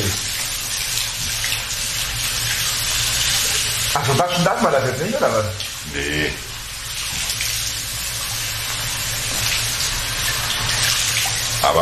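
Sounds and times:
water running from a tap, rinsing hair after a vinegar rinse: 0.0 - 11.7
speech: 4.0 - 6.5.

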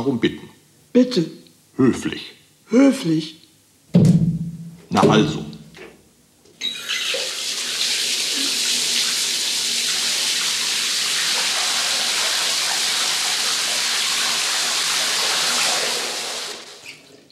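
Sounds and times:
speech: 0.0 - 4.2, 4.9 - 5.5
cooler water pouring from a tap into a bathtub: 6.6 - 17.2.

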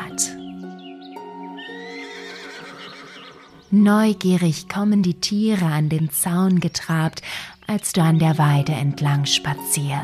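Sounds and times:
horse neighing on a mountain pasture by a lake: 1.6 - 3.7
speech: 3.7 - 10.0.

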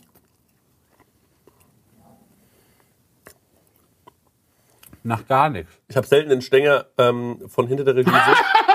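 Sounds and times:
biting into and chewing food: 0.0 - 5.0
speech: 5.0 - 8.6
laughter: 8.0 - 8.7.

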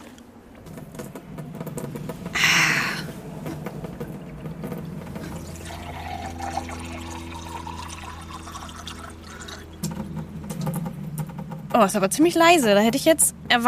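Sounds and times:
low even hum: 0.0 - 13.6
water running from a tap: 5.0 - 10.0
speech: 11.8 - 13.6.

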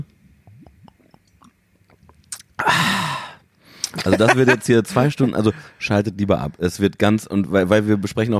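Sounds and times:
person drinking and swallowing: 0.2 - 4.0
mouth smack: 0.4 - 2.6
laughter: 3.9 - 5.7
speech: 4.0 - 8.3.

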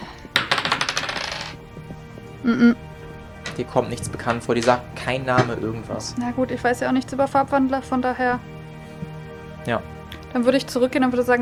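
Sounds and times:
dice rolled for a history check clattering on a hard surface: 0.4 - 1.6
speech: 2.4 - 2.9, 3.6 - 8.6, 9.6 - 11.3.

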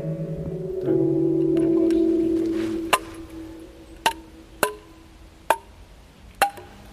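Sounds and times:
jingle melody on an outdoor forest piano: 0.0 - 4.6.

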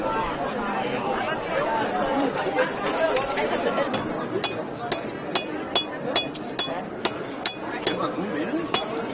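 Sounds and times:
murmur of crowd chatter at an outdoor market: 0.0 - 9.1
metallic hammer strikes while forging silver jewellery: 3.9 - 8.0, 8.7 - 9.0.

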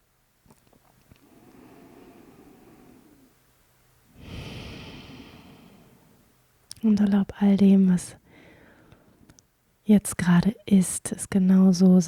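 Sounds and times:
slow deep breathing during a guided relaxation exercise: 1.1 - 6.4, 8.2 - 9.3
speech: 6.8 - 8.2, 9.9 - 12.0.

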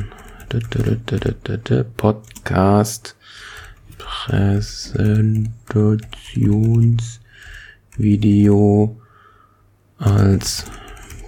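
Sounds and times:
typing on a computer keyboard: 0.0 - 2.6, 3.4 - 8.4, 10.0 - 11.2
speech: 0.5 - 7.2, 8.0 - 9.0, 10.0 - 10.8.

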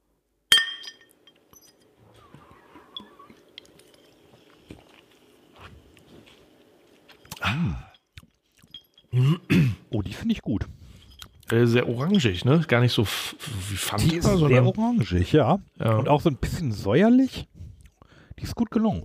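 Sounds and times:
glasses clinking in a toast: 0.5 - 2.0, 2.9 - 4.2, 7.1 - 9.4, 11.0 - 12.6
speech: 7.5 - 7.9, 10.1 - 10.8, 11.5 - 17.5, 18.4 - 19.0.

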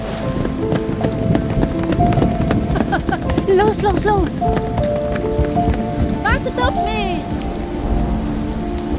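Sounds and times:
footfalls of people running on a wet surface: 0.0 - 7.0
steady rain: 0.0 - 8.9
speech: 3.7 - 5.4, 6.4 - 7.4.

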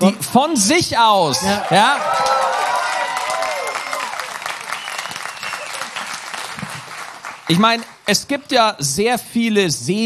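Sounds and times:
speech: 0.0 - 2.3, 7.5 - 10.0
live audience in Osnabrück cheering and whooping: 1.2 - 7.2
live audience in Osnabrück applauding: 1.3 - 8.5.

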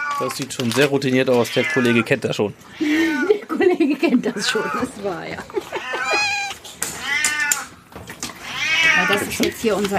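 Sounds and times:
speech: 0.2 - 5.7, 9.0 - 9.9
cat meowing: 1.4 - 2.1, 2.7 - 3.3, 4.3 - 5.0, 5.7 - 7.8, 8.4 - 9.5
laughter: 2.8 - 6.5.

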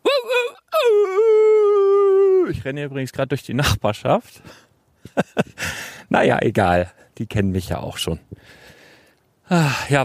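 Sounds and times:
person imitating a whimpering dog: 0.0 - 2.5
speech: 2.6 - 5.2, 6.1 - 8.7, 9.5 - 10.0
laughter: 5.1 - 5.6.

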